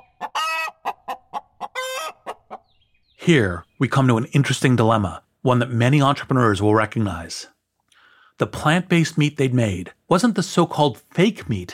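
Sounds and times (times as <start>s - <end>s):
chicken clucking: 0.0s - 2.8s
speech: 3.2s - 7.6s, 8.4s - 11.7s.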